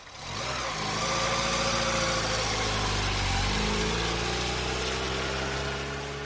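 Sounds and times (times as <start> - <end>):
car engine turning over and pulling away along a wet city avenue in drizzle: 0.0 - 6.2.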